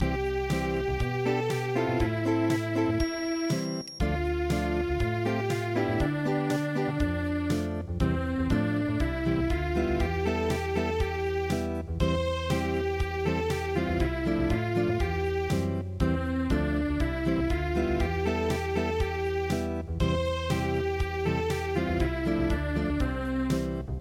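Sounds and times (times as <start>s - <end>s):
unplugged piano: 0.0s - 23.9s.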